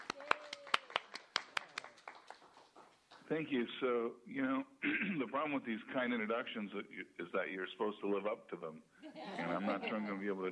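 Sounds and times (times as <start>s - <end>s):
light scattered hand clapping from a small group: 0.0s - 3.3s
speech: 3.3s - 10.5s
laughter: 9.0s - 10.5s.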